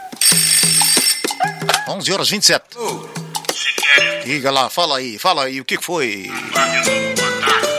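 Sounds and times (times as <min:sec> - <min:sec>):
telephone ringing in a newsroom: 0:00.2 - 0:01.7
speech: 0:01.9 - 0:03.0, 0:03.9 - 0:07.6.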